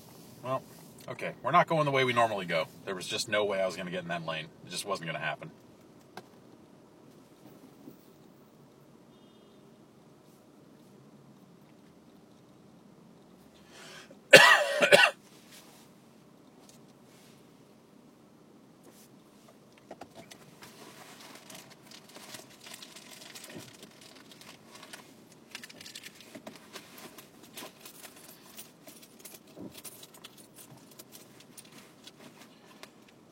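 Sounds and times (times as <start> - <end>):
low hum of a moving car: 0.0 - 33.2
speech: 0.4 - 5.6
rustling and crinkling in a pocket while digging for a cough drop: 20.5 - 33.0
small clicks and jingles: 21.3 - 32.2.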